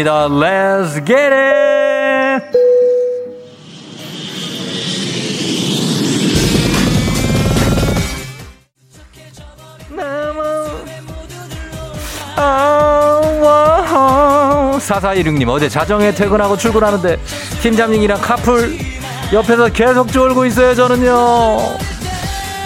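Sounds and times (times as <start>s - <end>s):
speech: 0.0s - 1.8s, 14.8s - 21.9s
jet airplane roaring as it takes off: 2.1s - 8.6s
upbeat music: 6.3s - 22.6s.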